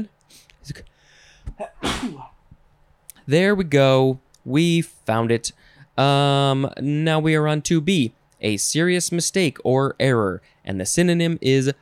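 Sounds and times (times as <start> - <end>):
speech: 0.0 - 0.9, 3.3 - 11.8
person sneezing loudly: 1.5 - 2.4.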